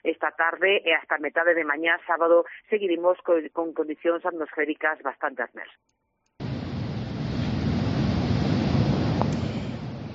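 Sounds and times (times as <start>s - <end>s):
speech: 0.2s - 6.0s
rough stormy sea waves crashing: 6.4s - 10.1s
windy rumble: 6.4s - 10.1s.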